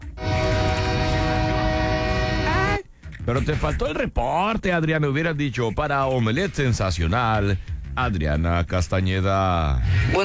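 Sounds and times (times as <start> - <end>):
train horn blaring from a train heading to Calexico: 0.0 - 2.8
rail cars rumbling: 0.2 - 2.8
speech: 3.3 - 10.2.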